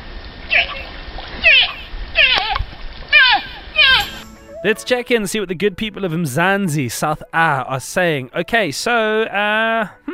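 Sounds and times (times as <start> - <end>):
water splashing and sloshing: 0.0 - 5.2
animal giving short wavering calls: 0.5 - 4.2
speech: 4.6 - 10.1.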